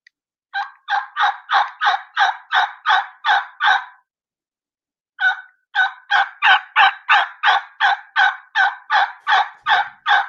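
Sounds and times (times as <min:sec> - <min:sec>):
turkey call making rollover yelps: 0:00.6 - 0:04.0, 0:05.2 - 0:10.2.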